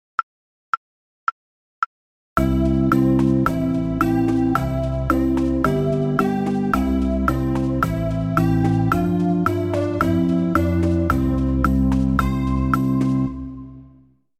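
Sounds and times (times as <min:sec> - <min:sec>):
fast tempo melody: 0:02.4 - 0:13.9.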